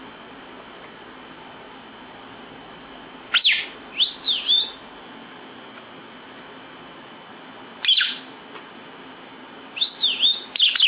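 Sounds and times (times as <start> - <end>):
lovebird chirping: 3.3 - 4.8, 7.8 - 8.3, 9.8 - 10.8.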